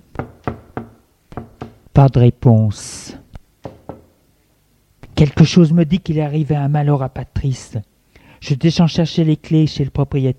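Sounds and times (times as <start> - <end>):
knocking on a door: 0.1 - 1.8, 3.6 - 4.1
speech: 2.0 - 3.1, 5.2 - 10.3.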